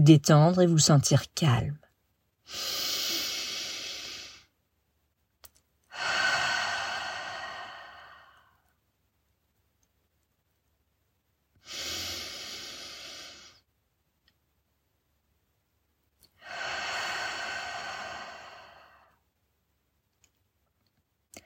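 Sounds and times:
speech: 0.0s - 1.8s, 2.5s - 2.9s
long slow breaths in through nose and out through mouth: 2.5s - 4.5s, 5.9s - 8.7s, 11.6s - 13.6s, 16.3s - 19.2s.

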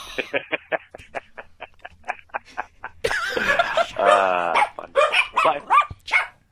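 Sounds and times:
laughter: 0.0s - 5.0s
dog barking in alarm: 3.8s - 6.4s.

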